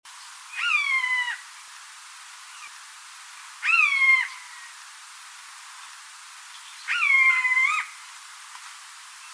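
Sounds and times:
light hiss: 0.1s - 9.3s
Eurasian jay Garrulus glandarius mewing calls: 0.5s - 1.5s, 3.6s - 4.8s, 6.9s - 8.0s.

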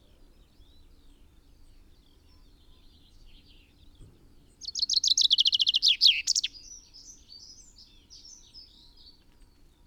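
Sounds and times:
common chaffinch Fringilla coelebs singing: 4.6s - 6.6s.

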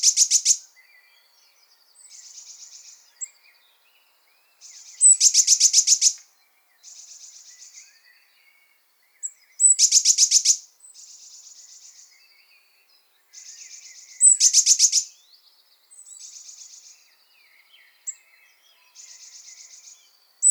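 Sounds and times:
Eurasian blue tit Cyanistes caeruleus churring and scolding: 0.0s - 0.6s, 5.0s - 6.2s, 9.6s - 10.6s, 14.2s - 15.1s.

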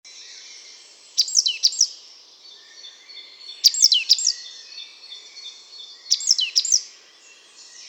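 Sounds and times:
great tit Parus major chirping: 1.1s - 2.0s, 3.5s - 4.6s, 5.8s - 6.8s.

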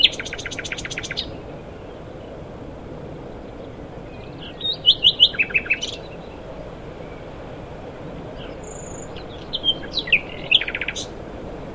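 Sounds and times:
common nightingale Luscinia megarhynchos singing: 0.0s - 2.3s, 4.0s - 7.4s, 8.3s - 11.2s.

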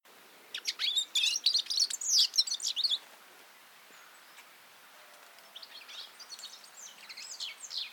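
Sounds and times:
European goldfinch Carduelis carduelis twittering song: 0.5s - 3.0s, 5.4s - 7.9s.

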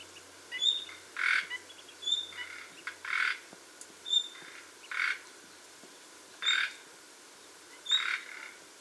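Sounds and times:
common nightingale Luscinia megarhynchos calls: 0.0s - 5.7s, 6.4s - 8.6s
steady low background hiss: 0.0s - 8.7s.

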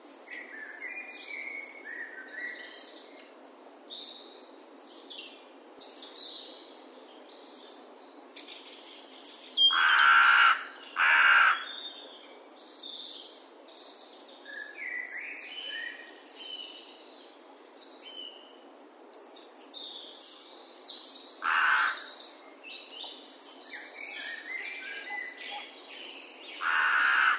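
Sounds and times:
chorus of chirping and whistling songbirds: 0.2s - 27.3s
carrion crow Corvus corone cawing: 9.7s - 11.7s, 21.4s - 22.1s, 26.6s - 27.3s.

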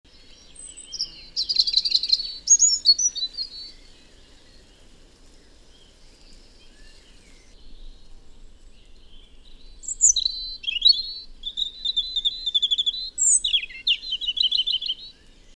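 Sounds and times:
European robin with high thin warbling phrases: 9.8s - 15.0s.

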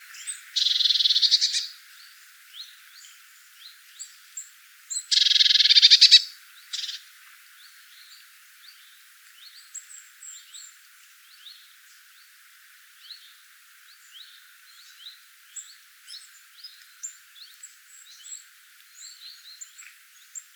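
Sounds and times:
Eurasian blue tit Cyanistes caeruleus rattling churrs: 0.6s - 1.7s, 5.1s - 7.0s.

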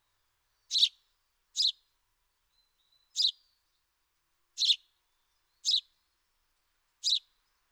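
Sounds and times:
house sparrow loud chirps: 0.7s - 1.0s, 1.6s - 1.8s, 2.6s - 3.4s, 4.6s - 4.8s, 5.5s - 5.9s, 7.0s - 7.3s.

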